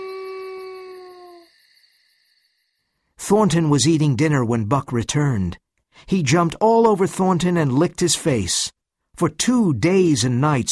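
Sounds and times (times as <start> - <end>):
wolf howling mournfully: 0.0 - 1.5
speech: 3.3 - 10.7.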